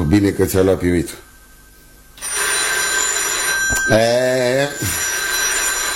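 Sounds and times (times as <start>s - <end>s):
speech: 0.1s - 1.3s, 3.9s - 4.1s
telephone ringing: 2.1s - 5.9s.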